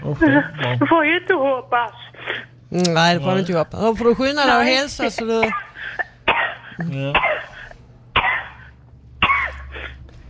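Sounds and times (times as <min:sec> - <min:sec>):
faint low hum: 0:00.0 - 0:10.2
speech: 0:00.1 - 0:06.0, 0:06.8 - 0:07.4
two harsh coughs: 0:05.1 - 0:10.0
raspy throat-clearing rumble: 0:05.1 - 0:10.1.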